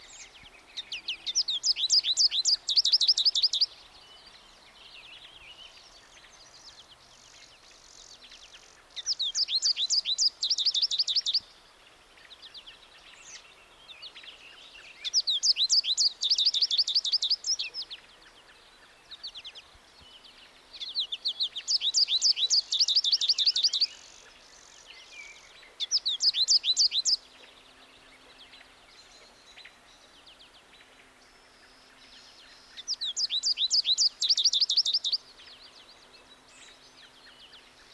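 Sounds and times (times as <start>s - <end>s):
American Goldfinch Spinus tristis: 0.0s - 37.9s.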